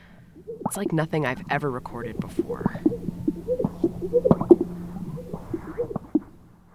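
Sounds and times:
steady low hum: 0.0 - 6.7
speech: 0.7 - 4.7
male bird's air-sac mating display calls: 1.9 - 6.3.

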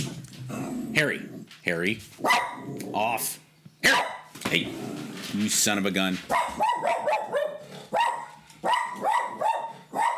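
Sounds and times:
speech: 1.0 - 7.4
dog barking at another dog walking by the window: 2.2 - 2.7, 3.8 - 4.3, 6.3 - 10.1.

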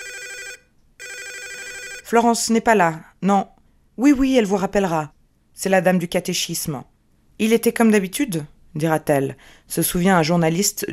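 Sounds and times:
telephone ringing: 0.0 - 2.2
speech: 2.1 - 10.9.

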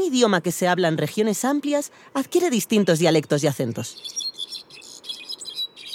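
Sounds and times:
speech: 0.1 - 4.4
Brown-backed solitaire singing: 3.9 - 5.9.

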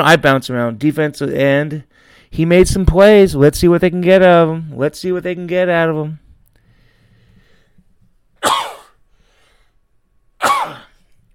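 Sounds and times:
speech: 0.0 - 6.2
person sneezing: 8.4 - 9.0, 10.4 - 11.1.

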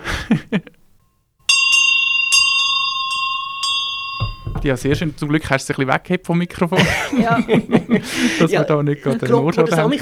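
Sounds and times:
laughter: 0.0 - 0.8, 6.6 - 9.9
large hand bell being rung loudly: 1.4 - 5.4
speech: 4.6 - 9.9.

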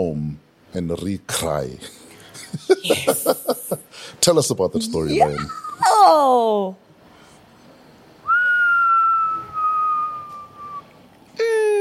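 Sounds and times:
speech: 0.0 - 6.8
laughter: 2.4 - 3.8
person whistling a sliding note: 8.3 - 10.9.

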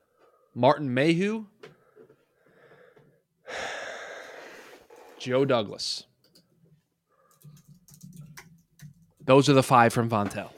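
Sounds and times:
speech: 0.6 - 1.5, 5.2 - 6.1, 9.3 - 10.5
typing on a computer keyboard: 7.3 - 9.3.

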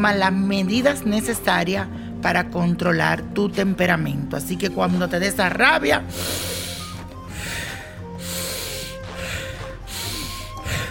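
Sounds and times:
speech: 0.0 - 6.6
slow deep breaths in and out: 6.1 - 10.8.

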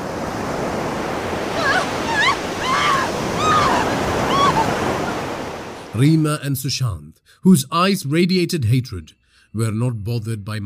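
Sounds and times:
ocean surf washing over the shore: 0.0 - 6.0
thin wavering high-pitched cries: 1.6 - 4.8
speech: 6.0 - 10.6.

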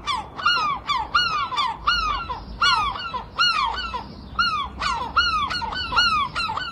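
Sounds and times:
faint noise: 0.0 - 6.7
seagulls squawking outside a bedroom window in Folkestone: 0.0 - 6.7.

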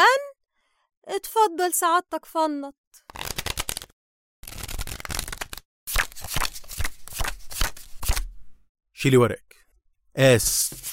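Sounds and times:
speech: 1.2 - 2.8, 9.0 - 9.6, 10.2 - 10.9
playing cards shuffled for a round of conquian: 3.1 - 3.9, 4.5 - 8.3, 10.5 - 10.9.

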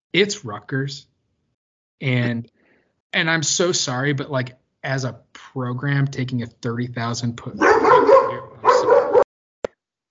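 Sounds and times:
speech: 0.1 - 1.1, 2.0 - 8.1
dog barking: 7.6 - 9.3.

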